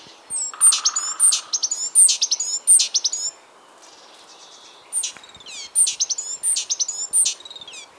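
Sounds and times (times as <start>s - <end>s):
great tit giving sharp high downslurred calls: 0.3s - 3.4s, 4.9s - 7.9s.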